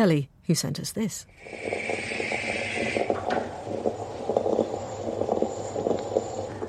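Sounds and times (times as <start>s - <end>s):
speech: 0.0s - 2.1s
high hiss of moka pot: 1.3s - 6.6s
moka pot gurgling on the stove while brewing coffee: 1.3s - 6.6s.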